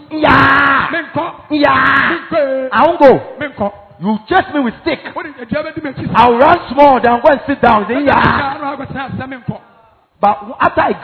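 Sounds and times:
male preacher imitating a child screaming: 0.0s - 2.8s, 8.0s - 8.6s
speech: 1.0s - 11.0s.

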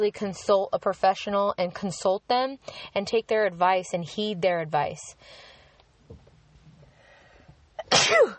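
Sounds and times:
speech: 0.0s - 5.5s, 7.9s - 8.3s
soft breathing: 2.6s - 3.0s, 5.1s - 6.0s, 6.7s - 7.8s
sharp intake of breath: 5.2s - 5.8s
loud human sneeze: 7.8s - 8.3s.

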